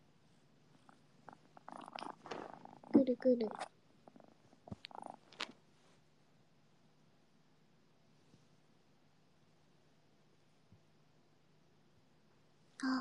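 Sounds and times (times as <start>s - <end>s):
cat purring: 0.2s - 5.9s
speech: 3.1s - 3.7s.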